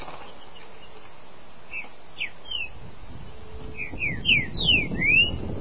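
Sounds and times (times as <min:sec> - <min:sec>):
green-winged saltator singing: 0:01.7 - 0:02.8, 0:03.3 - 0:05.5.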